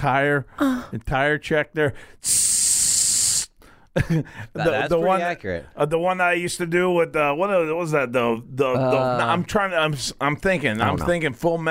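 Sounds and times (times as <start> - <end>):
speech: 0.0 - 2.9, 4.0 - 11.6
aerosol can spray hiss imitated with the mouth: 2.2 - 3.6.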